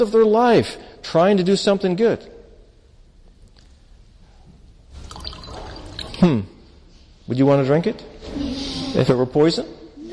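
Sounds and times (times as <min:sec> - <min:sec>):
speech: 0:00.0 - 0:02.4, 0:06.2 - 0:06.5, 0:07.3 - 0:10.1
water pouring into a container: 0:05.0 - 0:06.2.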